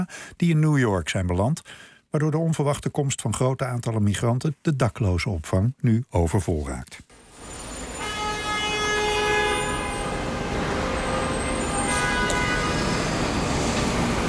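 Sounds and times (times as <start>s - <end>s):
speech: 0.0s - 7.1s
morning rush-hour traffic on a busy New York street: 7.3s - 14.2s
car horn blasts: 8.0s - 13.1s.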